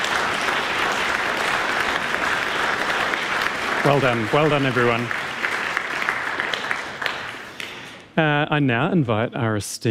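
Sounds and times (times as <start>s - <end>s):
audience applause for young musicians: 0.0s - 7.9s
speech: 3.8s - 5.2s, 8.2s - 9.8s.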